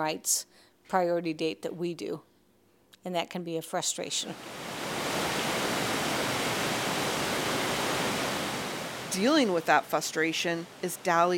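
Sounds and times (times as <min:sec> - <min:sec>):
speech: 0:00.0 - 0:02.3, 0:03.0 - 0:04.7, 0:09.1 - 0:11.3
river water flowing: 0:04.4 - 0:11.3.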